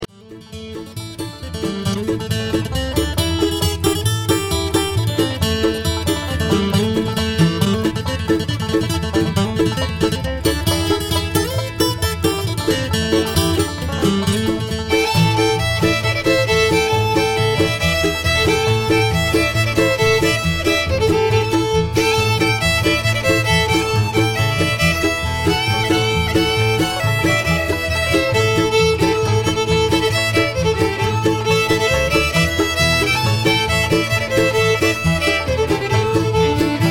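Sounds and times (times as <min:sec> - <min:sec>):
bluegrass band playing: 0:00.0 - 0:36.8.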